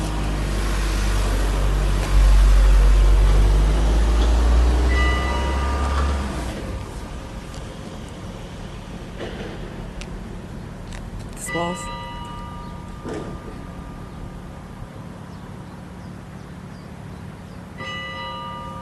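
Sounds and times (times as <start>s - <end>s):
car with deep rumbling engine passing by: 0.0s - 9.8s
steady low outdoor rumble: 0.0s - 18.8s
church bells ringing: 4.8s - 6.9s, 11.4s - 15.2s, 17.8s - 18.8s.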